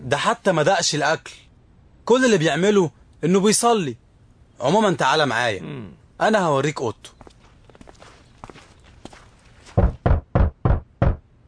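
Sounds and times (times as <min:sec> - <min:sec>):
speech: 0:00.1 - 0:01.4, 0:02.1 - 0:04.0, 0:04.6 - 0:07.2
faint footsteps: 0:07.0 - 0:11.2
firm knocking on a wooden door: 0:09.8 - 0:11.2.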